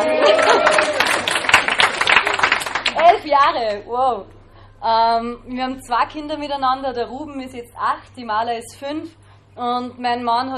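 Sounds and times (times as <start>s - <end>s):
person cheering: 0.0s - 1.3s
audience applause: 0.0s - 3.1s
speech: 3.2s - 10.5s.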